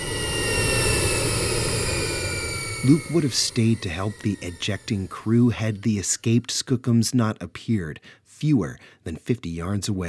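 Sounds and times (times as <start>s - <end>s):
jet aircraft engines roaring while losing altitude: 0.0s - 6.3s
speech: 2.8s - 10.0s.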